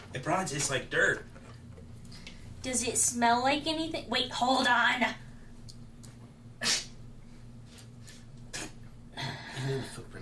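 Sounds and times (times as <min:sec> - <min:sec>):
speech: 0:00.1 - 0:01.3, 0:02.6 - 0:05.2, 0:09.7 - 0:10.2
sneeze: 0:06.6 - 0:07.0.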